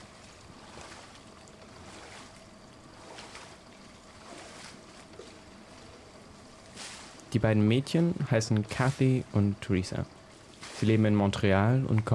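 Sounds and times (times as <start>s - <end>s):
water lapping and splashing in a swimming pool: 0.0s - 7.4s, 8.0s - 12.1s
speech: 7.3s - 10.2s, 10.8s - 12.1s.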